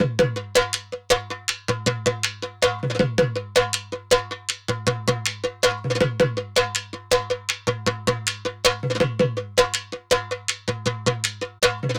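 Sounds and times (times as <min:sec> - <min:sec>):
dhol drum loop: 0:00.0 - 0:11.9.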